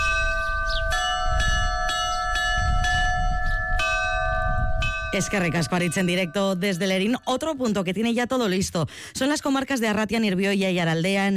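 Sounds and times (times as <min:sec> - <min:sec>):
church bells rung by bell ringers: 0:00.0 - 0:07.8
speech: 0:05.2 - 0:11.3.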